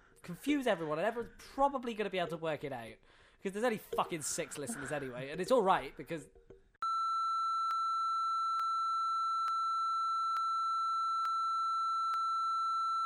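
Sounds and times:
speech: 0:00.3 - 0:06.5
long high censor beep: 0:06.8 - 0:13.0.

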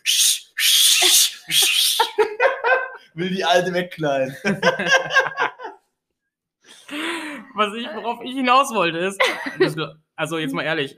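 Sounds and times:
voice imitating a loud two-handed whistle: 0:00.0 - 0:02.1
short voiced bursts of laughter: 0:01.5 - 0:03.1, 0:04.3 - 0:05.9, 0:09.2 - 0:09.8
speech: 0:03.2 - 0:05.5, 0:07.6 - 0:10.9.

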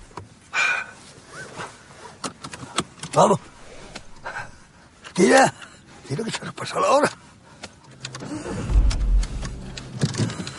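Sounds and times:
speech: 0:03.2 - 0:03.6, 0:05.2 - 0:07.2
driving school car engine setting off: 0:03.4 - 0:05.0, 0:08.0 - 0:10.5.

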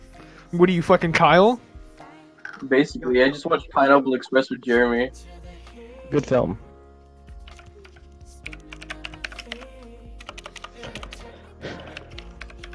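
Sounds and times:
speech: 0:00.5 - 0:01.7, 0:02.6 - 0:05.3, 0:06.1 - 0:06.7
typing on a computer keyboard: 0:07.5 - 0:11.2, 0:11.8 - 0:12.7.

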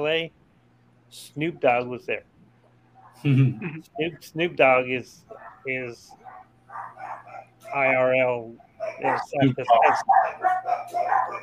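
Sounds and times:
speech: 0:00.0 - 0:00.4, 0:01.1 - 0:02.3, 0:03.2 - 0:11.4
faint low hum: 0:00.0 - 0:11.4
dog barking and yipping: 0:05.3 - 0:11.4.

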